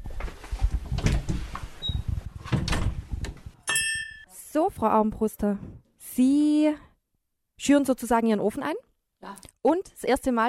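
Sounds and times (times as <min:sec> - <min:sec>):
shop door pushed open with clattering, rattling thumps and a creak: 0:00.2 - 0:03.6
speech: 0:04.6 - 0:06.9, 0:07.6 - 0:10.4.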